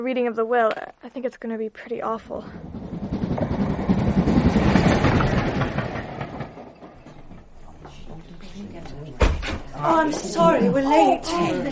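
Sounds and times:
speech: 0:00.0 - 0:02.8, 0:08.2 - 0:11.6
train rumbling on rails: 0:02.4 - 0:07.6
rapid clickety-clack of train wheels: 0:02.5 - 0:07.6.

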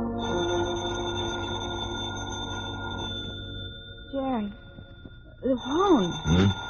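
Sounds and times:
telephone bell ringing: 0:00.2 - 0:06.6
vocal exclamations: 0:06.3 - 0:06.6.

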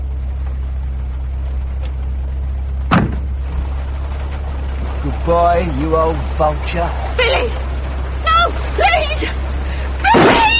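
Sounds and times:
car engine idling in automatic drive: 0:00.0 - 0:10.5
car door clunk: 0:02.8 - 0:03.5
speech: 0:05.3 - 0:07.6, 0:08.8 - 0:09.4.

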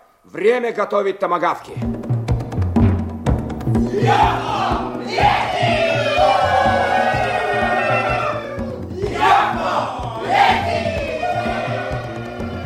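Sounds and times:
speech: 0:00.2 - 0:02.1, 0:04.0 - 0:05.7
steady rhythmic drumbeat: 0:01.7 - 0:12.6
crowd shouting a war cry: 0:03.9 - 0:12.6.

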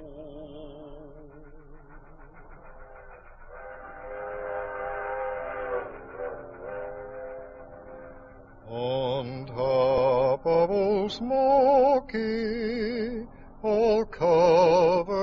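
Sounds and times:
low rumble of rolling rail cars: 0:00.0 - 0:15.2
train whistle blowing in chord-like blasts: 0:03.4 - 0:08.4
speech: 0:11.2 - 0:12.5.

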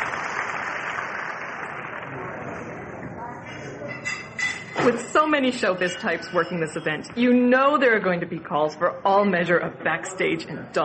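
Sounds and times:
crowd applauding: 0:00.0 - 0:02.9
murmur of voices: 0:02.0 - 0:10.8
speech: 0:04.8 - 0:10.8.

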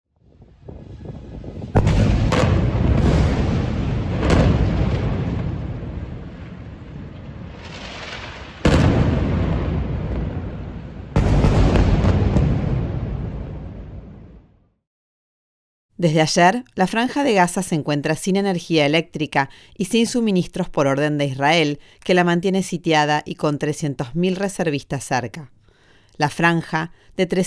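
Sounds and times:
heavy rocket explosions destroying apartment building: 0:00.3 - 0:14.5
speech: 0:16.0 - 0:25.6, 0:26.2 - 0:27.4.

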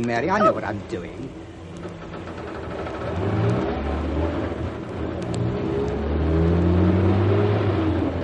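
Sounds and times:
speech: 0:00.0 - 0:01.5
car engine humming and revving in a car park at night in the rain: 0:02.0 - 0:08.2.

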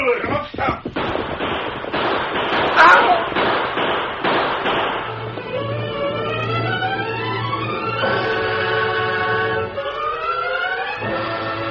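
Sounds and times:
rapid volley of sharp gunshots: 0:00.2 - 0:05.6
loud wailing tones: 0:05.1 - 0:11.6.

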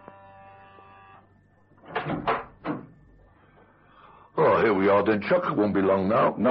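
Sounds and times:
electric doorbell buzz at a dentist's surgery: 0:00.0 - 0:03.6
door rattling and clattering as pushed open: 0:01.8 - 0:02.9
speech: 0:04.7 - 0:06.4.

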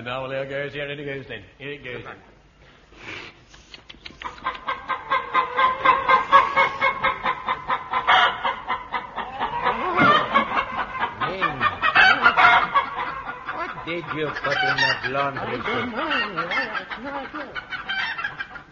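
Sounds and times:
speech: 0:00.0 - 0:02.4, 0:13.9 - 0:17.4
several voices imitating clucking brood hens: 0:03.6 - 0:18.7
laughter: 0:09.2 - 0:17.6.

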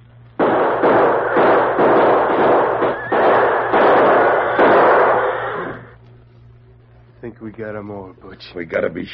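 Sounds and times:
gunfire in an ambush shootout between lawmen and outlaws: 0:00.4 - 0:06.0
speech: 0:07.2 - 0:09.1.

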